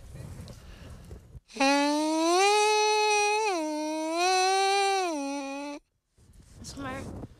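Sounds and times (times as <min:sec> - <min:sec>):
horn mouthpiece buzzing a low note sliding to a high note: 0:01.5 - 0:05.8.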